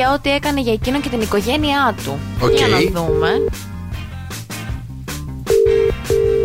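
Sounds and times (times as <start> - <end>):
speech: 0.0 - 3.7
song with a steady beat: 2.2 - 6.1.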